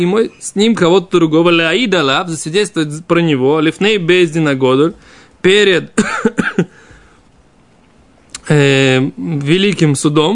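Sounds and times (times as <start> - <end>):
speech: 0.0 - 6.8, 8.5 - 10.3
person coughing: 6.0 - 6.9.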